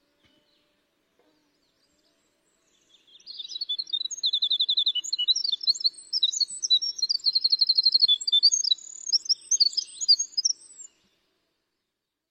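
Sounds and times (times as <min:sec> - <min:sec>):
winter wren flute-like song played from a tape: 0:02.8 - 0:11.0.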